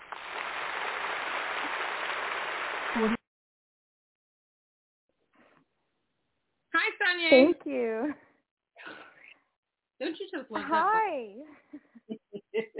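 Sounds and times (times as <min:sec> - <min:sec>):
canned applause from an applause button: 0:00.0 - 0:03.1
speech: 0:03.0 - 0:03.2, 0:07.3 - 0:08.2, 0:10.5 - 0:11.9
laughter: 0:11.5 - 0:12.7.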